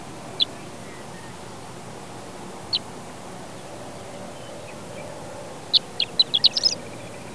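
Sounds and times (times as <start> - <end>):
horned lark singing: 0.0 - 1.6, 3.5 - 7.3.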